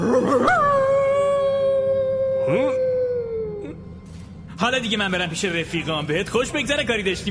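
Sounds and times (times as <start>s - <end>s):
wolf howling: 0.0s - 3.8s
speech: 4.6s - 7.2s.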